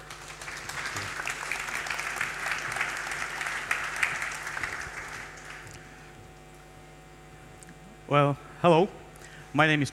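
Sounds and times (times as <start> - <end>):
audience applause: 0.0 - 5.8
speech: 8.1 - 9.9.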